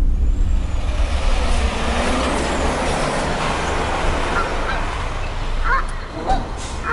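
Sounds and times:
road noise: 0.0 - 6.9
Canada geese honking while flying overhead: 4.2 - 5.0, 5.6 - 6.9.

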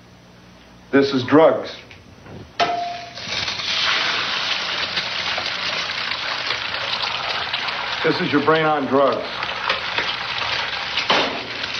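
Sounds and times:
speech: 0.9 - 2.5, 8.0 - 9.4
egg frying and sizzling in a hot pan: 3.1 - 11.7.

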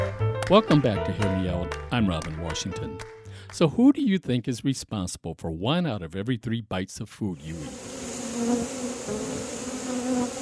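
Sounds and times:
speech: 0.5 - 7.9
bees buzzing in a steady dense drone: 7.4 - 10.3.

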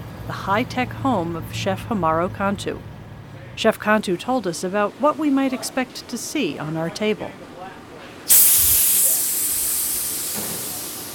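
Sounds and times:
speech: 0.3 - 2.9, 3.6 - 7.5
130 psi pressurized carbon dioxide bursting from a fermentation chamber in a restaurant kitchen: 8.3 - 11.1.

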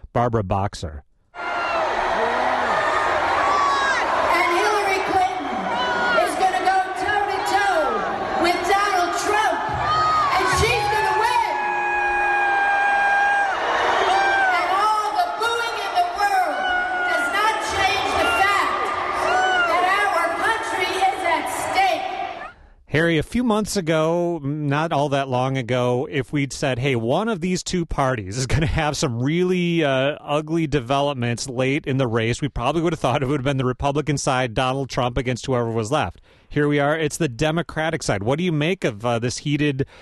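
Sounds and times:
speech: 0.2 - 1.1, 23.0 - 40.0
scattered shouts and whoops from the crowd: 1.4 - 8.7, 9.7 - 20.3
large crowd of political supporters booing during a speech: 1.4 - 22.6.

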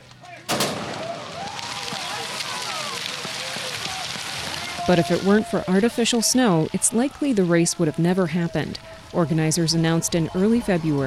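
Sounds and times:
crowd noise with voices at a cross-country ski race: 0.0 - 11.0
starting gun fired at the start of a cross-country ski race: 0.5 - 1.6
speech: 4.9 - 11.0.

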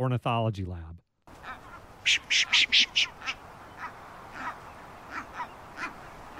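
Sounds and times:
speech: 0.0 - 1.0, 2.0 - 3.4
brown booby hoarse calls: 1.3 - 6.3
low background hiss: 1.3 - 6.3.

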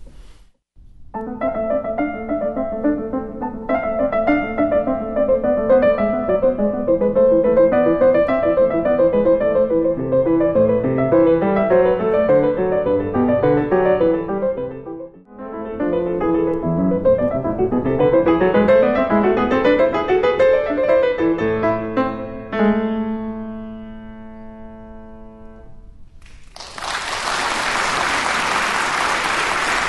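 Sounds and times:
solo piano playing baroque bourrées and gigue: 1.0 - 26.4
sizable audience applauding after piano performance: 26.2 - 29.8.

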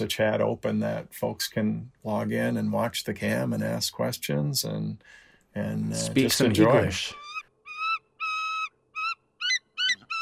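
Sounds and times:
speech: 0.0 - 7.2
bald eagle calls at a nest: 7.0 - 10.2.

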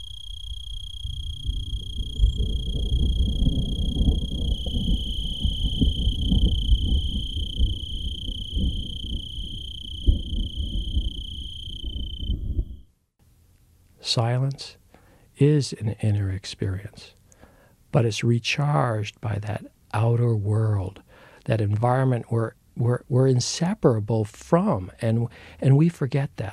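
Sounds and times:
cricket trilling: 0.0 - 12.9
distant thunder rumble: 0.9 - 12.8
speech: 14.1 - 14.8, 15.4 - 17.2, 17.9 - 26.5.

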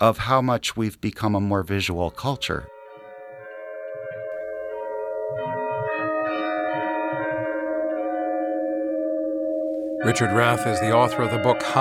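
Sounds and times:
speech: 0.0 - 2.7, 10.0 - 11.8
church bells of an 18th-century church in Philadelphia ringing: 2.5 - 11.8.

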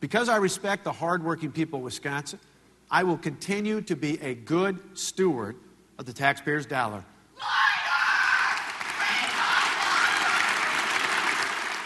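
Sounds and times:
speech: 0.0 - 7.6
legislators in a state assembly cheering loudly: 7.4 - 11.8
legislators in a state assembly applauding: 8.4 - 11.8.

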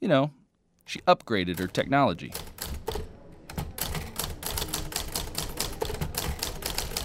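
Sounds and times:
speech: 0.0 - 2.5
typewriter keys clacking: 1.6 - 7.0.

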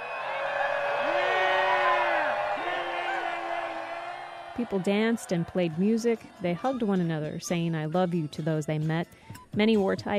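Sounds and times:
rising and falling whoops: 0.0 - 6.3
large crowd of hundreds of people in a meadow roaring and cheering in celebration: 0.0 - 7.1
speech: 4.6 - 10.1.

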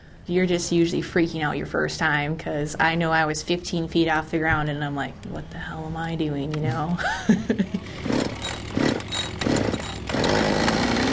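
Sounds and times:
speech: 0.3 - 7.8
laughter: 6.7 - 8.0
medium-sized Husqvarna 550 gas chainsaw revving: 7.8 - 11.1.

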